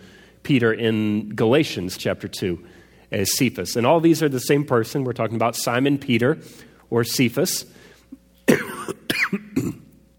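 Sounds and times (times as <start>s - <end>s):
speech: 0.5s - 9.4s
harsh raspy coughing: 8.4s - 10.0s.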